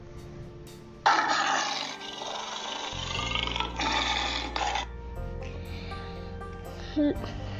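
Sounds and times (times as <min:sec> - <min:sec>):
low sustained musical drone: 0:00.0 - 0:07.5
lion roaring in rage: 0:01.2 - 0:04.9.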